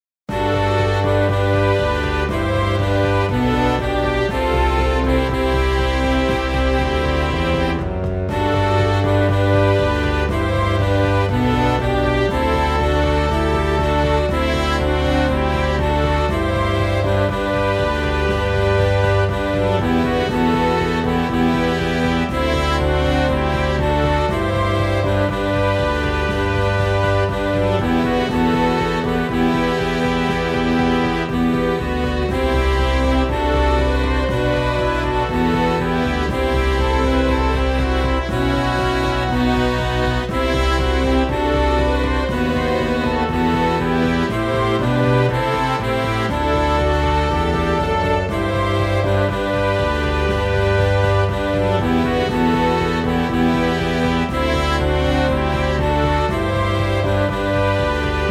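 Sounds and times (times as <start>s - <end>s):
slow foxtrot music played by full ensemble: 0.3s - 58.2s.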